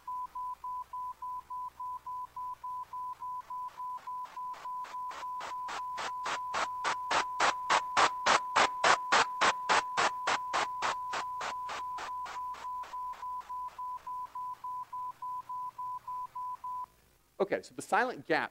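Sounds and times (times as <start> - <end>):
repeating pulsed beep tone: 0.1 - 7.5, 8.2 - 16.9
rapid bursts of white noise hiss: 3.6 - 14.1
speech: 17.4 - 18.5.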